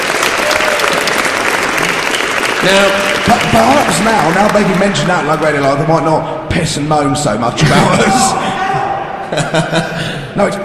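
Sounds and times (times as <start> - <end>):
audience applause: 0.0 - 5.6
speech: 2.6 - 8.6, 9.3 - 10.6
laughter: 7.6 - 10.3.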